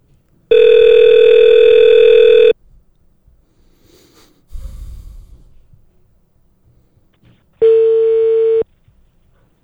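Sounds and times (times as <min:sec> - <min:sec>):
telephone dial tone on a bad connection: 0:00.5 - 0:02.6, 0:07.6 - 0:08.6.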